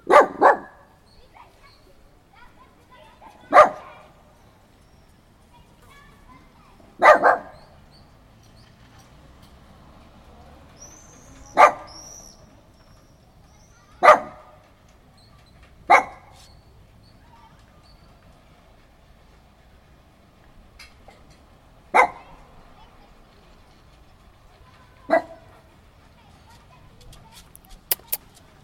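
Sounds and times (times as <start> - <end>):
dog barking: 0.0 - 0.9, 3.4 - 4.0, 7.0 - 7.7, 11.5 - 12.0, 14.0 - 14.5, 15.9 - 16.4, 21.9 - 22.4, 25.1 - 25.4.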